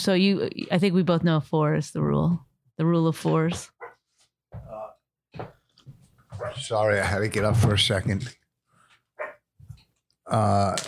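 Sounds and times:
speech: 0:00.0 - 0:03.7, 0:05.4 - 0:05.6, 0:06.4 - 0:08.4, 0:10.3 - 0:10.8
dog barking: 0:03.8 - 0:04.0, 0:06.3 - 0:06.7, 0:09.2 - 0:09.5.

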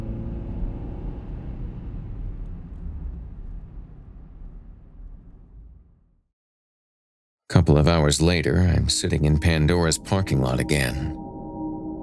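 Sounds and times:
car engine rumbling: 0:00.0 - 0:06.1
speech: 0:07.5 - 0:11.2.

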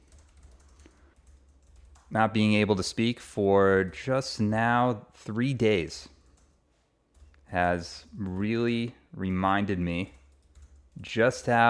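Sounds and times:
rapid keyboard typing: 0:00.0 - 0:02.6, 0:06.1 - 0:08.7, 0:09.9 - 0:11.6
speech: 0:02.1 - 0:06.2, 0:07.5 - 0:10.2, 0:11.0 - 0:11.6.

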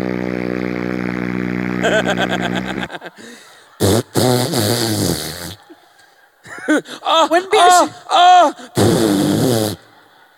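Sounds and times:
long buzzy fart sound effect: 0:00.0 - 0:02.9, 0:03.8 - 0:05.6, 0:08.8 - 0:09.8
people laughing: 0:01.7 - 0:10.3
speech: 0:01.8 - 0:04.0.

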